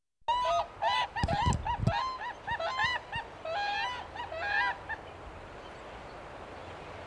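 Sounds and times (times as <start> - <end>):
whooping crane calls: 0.3 - 5.2.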